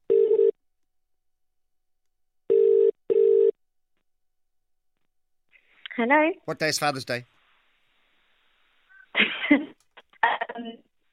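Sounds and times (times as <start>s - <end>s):
telephone ringing tone heard down the line: 0.1s - 0.6s, 2.5s - 3.6s
speech: 6.0s - 7.3s.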